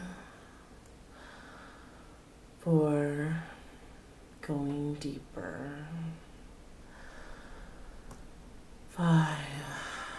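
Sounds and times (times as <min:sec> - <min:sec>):
person breathing deeply to relax: 0:00.0 - 0:02.3, 0:06.2 - 0:08.1, 0:09.6 - 0:10.1
speech: 0:02.6 - 0:03.5, 0:04.5 - 0:06.2, 0:09.0 - 0:09.8.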